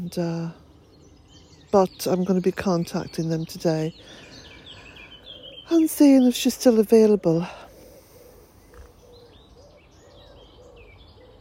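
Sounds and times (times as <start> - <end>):
speech: 0.0 - 0.6, 1.7 - 4.3, 5.7 - 7.6
birds chirping and tweeting outdoors near a polytunnel: 0.0 - 11.4
soft repeated cooing: 7.4 - 11.4.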